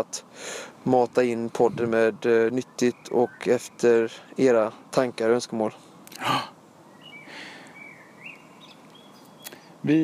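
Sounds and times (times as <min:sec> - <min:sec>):
speech: 0:00.0 - 0:06.5, 0:09.8 - 0:10.0
faint bird chirps and whistling calls outdoors: 0:00.0 - 0:09.9
breathy burst: 0:00.3 - 0:00.8.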